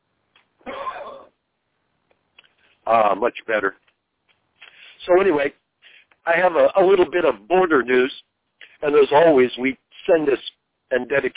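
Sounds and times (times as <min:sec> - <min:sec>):
harsh rasping cough or throat-clearing: 0:00.6 - 0:01.4
speech: 0:02.9 - 0:03.8, 0:05.0 - 0:05.6, 0:06.2 - 0:11.3.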